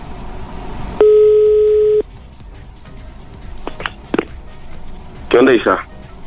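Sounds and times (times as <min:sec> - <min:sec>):
steady electronic telephone busy signal: 0:01.0 - 0:02.0
speech: 0:05.3 - 0:05.9.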